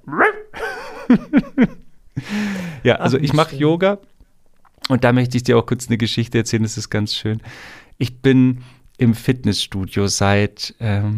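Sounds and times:
person imitating a dog yelping, barking and growling: 0:00.0 - 0:00.6
speech: 0:02.8 - 0:04.1, 0:04.9 - 0:11.1.

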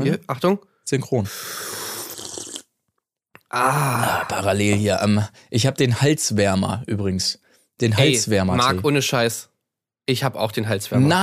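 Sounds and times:
speech: 0:00.0 - 0:01.7, 0:03.5 - 0:09.5, 0:10.1 - 0:11.2
slurping hot tea: 0:01.3 - 0:02.7.

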